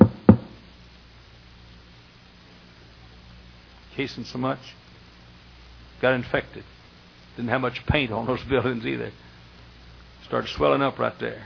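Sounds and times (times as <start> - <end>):
knocks on a wooden door: 0.0 - 0.6
speech: 4.0 - 4.8, 6.0 - 6.8, 7.4 - 9.2, 10.3 - 11.4.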